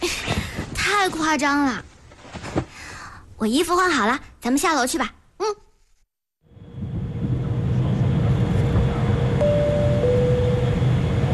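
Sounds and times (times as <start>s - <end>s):
speech: 1.0s - 1.9s, 3.4s - 5.6s
airplane cabin roar during descent: 6.5s - 11.3s
brief higher tone: 9.4s - 10.9s.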